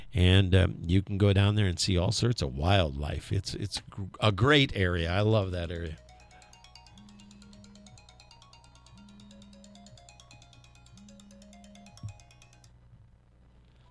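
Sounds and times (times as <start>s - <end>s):
speech: 0.2s - 6.0s
phone ringtone for an incoming call with a bright repeating melody: 6.0s - 12.7s.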